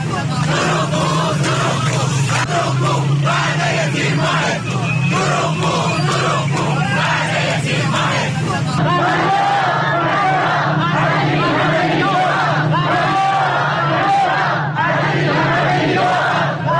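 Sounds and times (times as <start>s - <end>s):
crowd of protesting retirees chanting slogans in unison: 0.0s - 16.7s.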